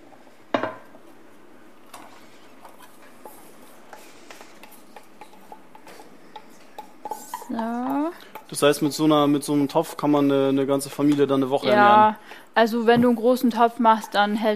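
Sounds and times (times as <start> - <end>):
scraping and tapping as onions are stirred: 1.9 - 7.6
speech: 7.6 - 7.9, 8.5 - 14.5.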